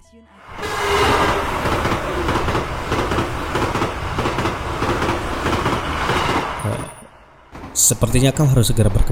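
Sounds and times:
train brake squeal: 0.4s - 2.3s, 6.2s - 8.7s
train arriving at a station with wheels rumbling on rails: 0.4s - 9.1s
speech: 7.9s - 9.1s.

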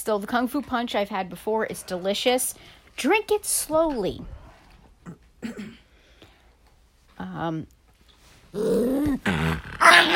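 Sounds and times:
speech: 0.0s - 4.4s, 5.1s - 5.8s, 7.2s - 7.8s, 8.5s - 10.1s
dogs growling and snarling: 8.5s - 10.1s.

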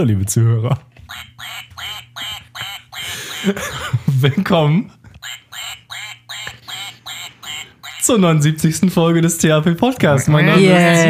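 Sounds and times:
speech: 0.0s - 1.7s, 3.4s - 5.0s, 8.0s - 11.0s
duck quacking in a studio: 1.1s - 3.7s, 5.2s - 8.2s.

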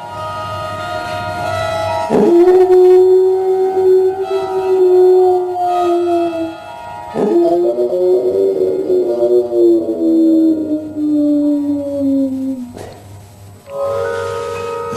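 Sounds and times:
steady low hum: 1.5s - 14.9s
enormous hound howling at night in a Dutch cemetery: 2.0s - 12.8s.

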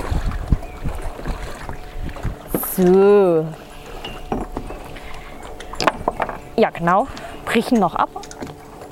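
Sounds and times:
boat passing on water: 0.0s - 8.9s
speech: 2.8s - 3.6s, 6.6s - 8.3s
loud wavering tone: 2.8s - 8.9s.

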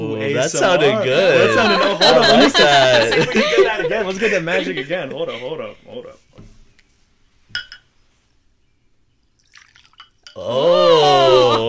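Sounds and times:
speech: 0.1s - 5.8s, 10.4s - 11.6s
laughter: 0.4s - 6.1s, 10.4s - 11.6s
shot glasses clinking in a toast: 7.6s - 7.9s, 9.4s - 10.4s
loud drawn-out vocal sound: 10.4s - 11.6s.

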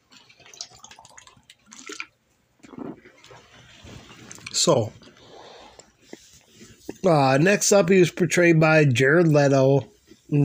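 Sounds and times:
faint water sloshing: 0.0s - 7.0s
person drinking water in sips and swallows: 0.1s - 7.1s
speech: 4.6s - 5.0s, 7.0s - 10.4s.

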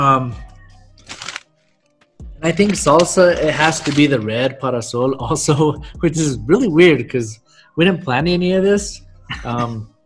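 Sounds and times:
speech: 0.0s - 0.5s, 2.4s - 9.9s
person biting into and chewing a crisp tortilla chip: 1.0s - 1.4s
laughter: 9.3s - 9.9s.

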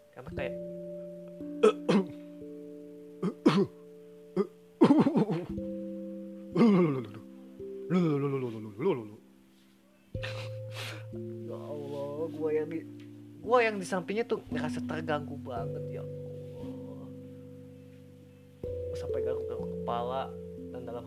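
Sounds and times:
steady low tone: 0.0s - 21.0s
speech: 0.2s - 0.8s, 13.8s - 16.2s
voice imitating an older man's stifled held-back coughs: 1.6s - 2.2s, 3.2s - 3.8s, 4.4s - 5.6s, 6.6s - 7.2s.

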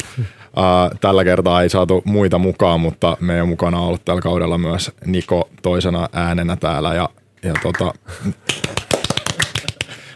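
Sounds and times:
speech: 0.2s - 8.8s
light polite clapping from a few hands: 8.5s - 10.0s.

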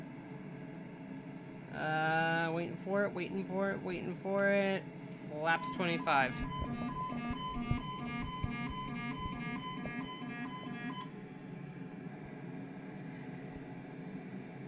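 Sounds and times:
speech: 1.8s - 6.7s
landing-gear warning alarm in a flight simulator game on final approach: 5.5s - 11.1s.

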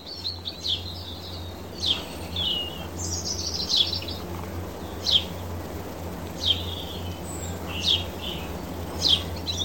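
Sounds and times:
robin singing high thin phrases: 0.0s - 4.2s, 6.4s - 9.6s
house sparrow chirping faintly: 0.0s - 5.6s, 6.4s - 9.6s
steady low outdoor hum: 0.0s - 9.6s.

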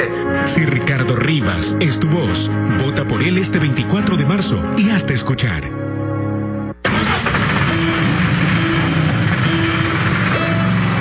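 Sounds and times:
speech: 0.0s - 5.8s
2019 NLR or NMR light-duty truck engine starting and roaring: 6.8s - 11.0s.

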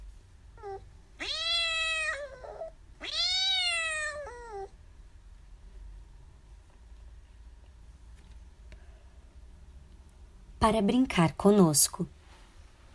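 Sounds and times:
cat meowing in long wavering cries: 0.6s - 4.8s
speech: 10.6s - 12.2s.

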